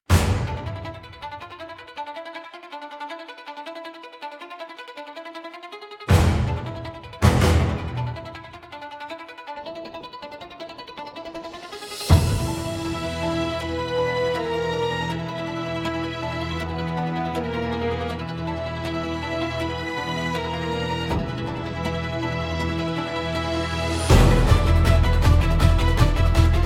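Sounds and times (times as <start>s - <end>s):
in-game battle music: 0.1s - 1.3s, 6.1s - 8.6s, 11.9s - 26.6s.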